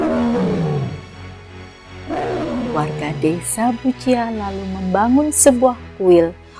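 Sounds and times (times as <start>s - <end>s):
tiger roaring and growling: 0.0s - 1.2s, 2.1s - 3.5s
speech: 3.2s - 6.4s.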